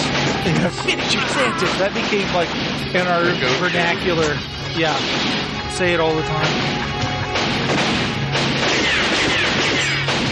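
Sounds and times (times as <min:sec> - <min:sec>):
speech: 0:00.6 - 0:07.8
rapid gunfire in a movie shootout: 0:01.7 - 0:05.6, 0:06.4 - 0:10.2.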